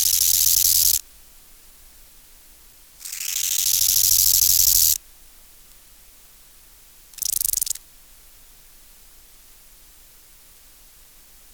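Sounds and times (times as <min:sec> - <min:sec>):
Chorthippus biguttulus euhedickei bow-winged grasshopper stridulating: 0:00.0 - 0:01.0, 0:03.0 - 0:05.0, 0:07.1 - 0:07.8.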